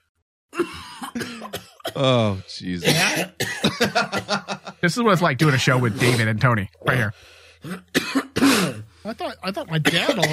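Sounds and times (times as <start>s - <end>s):
single harsh breathy cough: 0.5s - 4.5s, 5.4s - 6.4s, 7.6s - 8.9s, 9.8s - 10.3s
speech: 1.2s - 8.2s, 9.0s - 10.3s.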